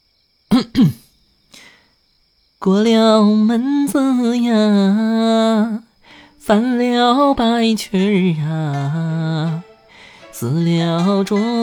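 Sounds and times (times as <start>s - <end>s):
person clearing throat: 0.5s - 1.1s
speech: 0.6s - 1.0s, 2.6s - 9.7s, 10.4s - 11.6s.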